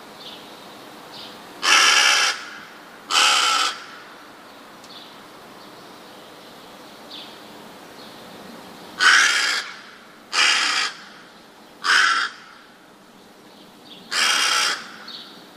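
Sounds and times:
rook cawing: 1.6s - 4.3s, 9.0s - 12.9s, 14.1s - 15.4s.

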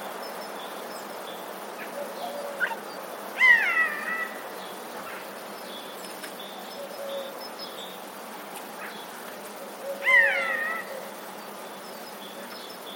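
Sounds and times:
steady hiss: 0.0s - 12.9s
Eurasian jay mewing calls: 1.8s - 2.8s, 3.4s - 5.3s, 9.8s - 11.1s.

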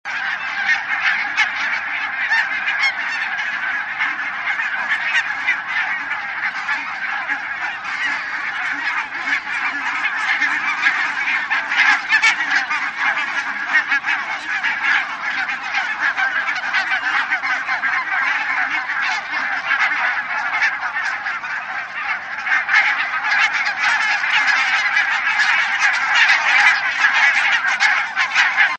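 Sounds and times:
barnacle geese calling: 0.0s - 28.7s.

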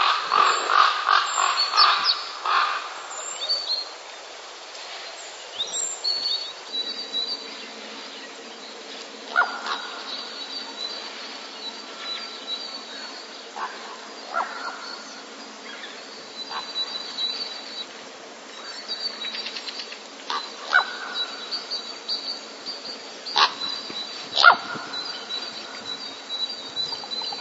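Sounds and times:
common raven courtship calls: 0.0s - 3.6s, 9.3s - 10.1s, 13.0s - 15.0s, 20.2s - 21.4s, 23.3s - 25.4s, 27.0s - 27.4s
faint high twittering from small birds: 0.0s - 27.4s.

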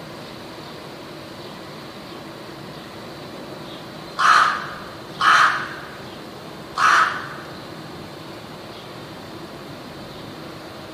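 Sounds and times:
rook cawing: 4.2s - 6.1s, 6.7s - 7.6s.

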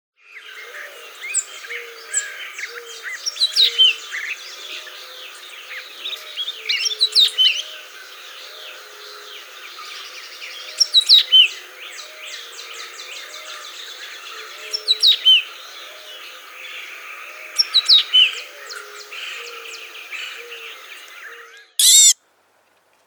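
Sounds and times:
Baeolophus atricristatus calling: 0.6s - 22.1s.

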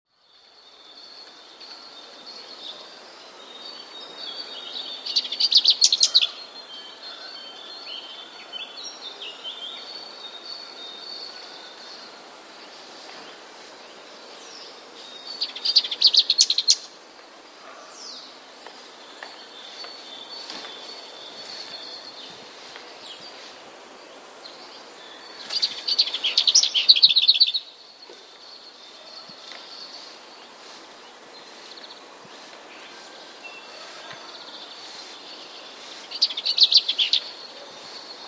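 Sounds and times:
lesser whitethroat singing: 0.1s - 17.0s, 17.6s - 38.2s.

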